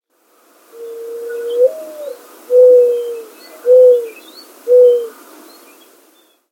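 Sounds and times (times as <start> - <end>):
mourning dove cooing: 0.8 - 5.2.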